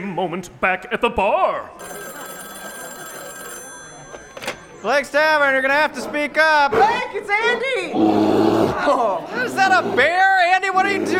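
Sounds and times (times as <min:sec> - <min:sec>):
speech: 0:00.2 - 0:02.1, 0:04.8 - 0:11.1
phone alarm ringing with bright electronic tone: 0:01.8 - 0:05.7.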